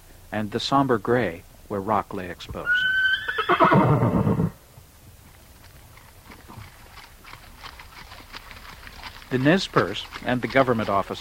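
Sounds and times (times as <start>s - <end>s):
speech: 0.3s - 2.9s, 3.5s - 4.4s, 9.3s - 11.1s
horse whinnying: 2.6s - 4.6s
horse hoof clops at a slow walking pace: 4.8s - 11.1s.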